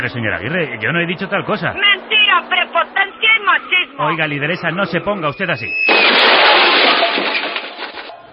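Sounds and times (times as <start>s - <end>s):
speech: 0.0s - 2.9s, 3.5s - 6.5s
car crashing into a motorcycle: 5.8s - 8.2s
crash debris crunching and clattering: 5.8s - 8.2s.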